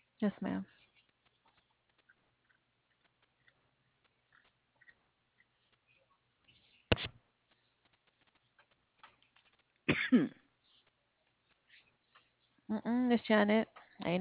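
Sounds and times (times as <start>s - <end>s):
faint ticking: 0.0s - 14.1s
speech: 0.2s - 0.8s, 10.1s - 10.4s, 12.7s - 14.1s
person coughing: 9.9s - 10.4s.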